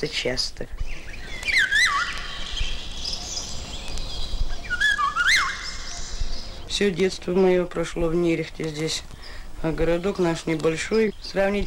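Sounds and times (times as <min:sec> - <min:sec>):
speech: 0:00.0 - 0:01.1, 0:06.8 - 0:11.6
Eurasian golden oriole singing fluty whistled phrases: 0:00.9 - 0:06.7.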